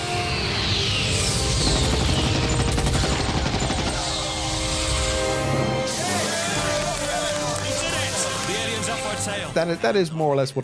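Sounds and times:
whistling, swirling aircraft noise: 0:00.0 - 0:05.8
aircraft engine roar: 0:00.0 - 0:09.6
aircraft cannon fire: 0:01.6 - 0:04.7
speech: 0:09.6 - 0:10.6.

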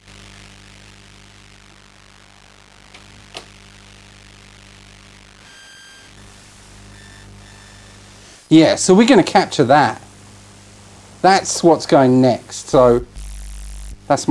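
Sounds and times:
electrical hum and hiss from audio mixer electromagnetic interference: 0:00.0 - 0:14.2
high whining tones: 0:05.3 - 0:08.1, 0:12.7 - 0:14.1
speech: 0:08.5 - 0:10.0, 0:11.2 - 0:13.1, 0:14.1 - 0:14.2.

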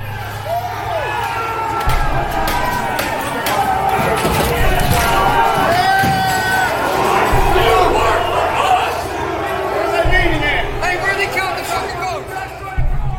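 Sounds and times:
loud agitated crowd shouting and yelling: 0:00.0 - 0:13.1
sharp bangs: 0:01.7 - 0:13.1
rioters smashing windows of the U.S. Capitol building: 0:01.8 - 0:08.4.

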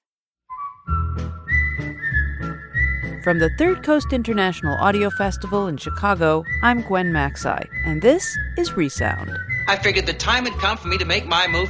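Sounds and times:
person whistling a short bright tune: 0:00.5 - 0:03.9, 0:05.0 - 0:09.8
full low backing music with a steady rhythm: 0:03.1 - 0:11.6
speech: 0:03.2 - 0:11.6.

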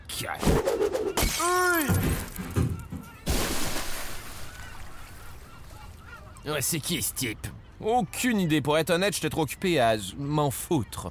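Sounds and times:
speech: 0:00.2 - 0:02.5, 0:06.4 - 0:11.0
champagne bottle smashing against a ship's hull at a ship launch: 0:01.2 - 0:04.9.

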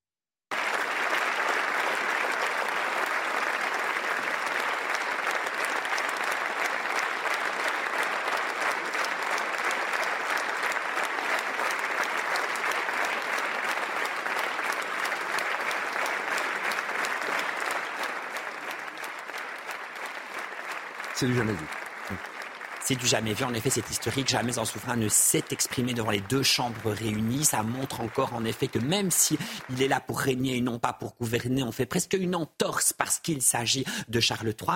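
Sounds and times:
standing ovation applause from parliament members in the Senate: 0:00.5 - 0:32.1
speech: 0:21.2 - 0:22.3, 0:22.9 - 0:34.7.

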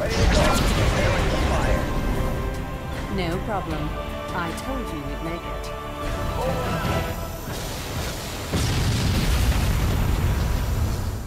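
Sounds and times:
giant Scarab walker war machine exploding in a sci-fi strategy video game: 0:00.0 - 0:03.1, 0:06.8 - 0:11.2
speech: 0:03.2 - 0:07.8.

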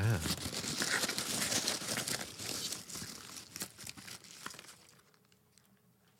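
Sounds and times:
crumpled paper slip crinkling while unfolded: 0:00.0 - 0:05.7.

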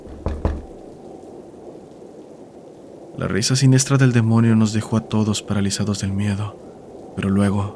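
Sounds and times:
heavy desperate knocking on a door: 0:00.0 - 0:00.8
speech: 0:03.2 - 0:07.7.

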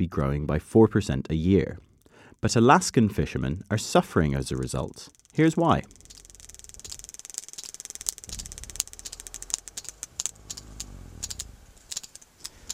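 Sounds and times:
speech: 0:00.0 - 0:06.0
sperm whale clicking while removing cod: 0:01.8 - 0:12.7
steady low mechanical rumble: 0:03.6 - 0:12.7.

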